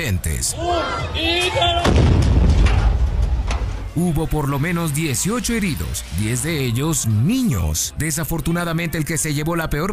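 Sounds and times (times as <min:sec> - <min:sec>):
speech: 0:00.0 - 0:02.3, 0:04.0 - 0:09.9
two drums exploding in a failed physics experiment: 0:01.8 - 0:04.0.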